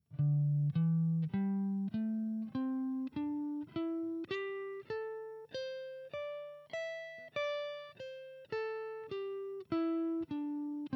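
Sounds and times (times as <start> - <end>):
guitar pentatonic pattern: 0.1 - 10.9.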